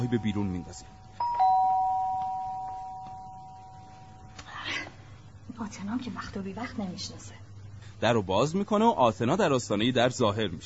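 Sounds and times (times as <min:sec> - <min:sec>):
speech: 0:00.0 - 0:01.0, 0:05.5 - 0:07.4, 0:08.0 - 0:10.6
doorbell at a home's front door with single bright electronic chime: 0:00.0 - 0:04.2.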